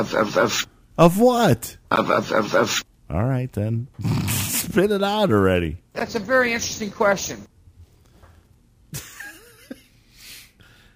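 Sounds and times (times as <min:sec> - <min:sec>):
speech: 0:00.0 - 0:07.5
wet snorting sniff of mucus with a cold: 0:04.0 - 0:04.8.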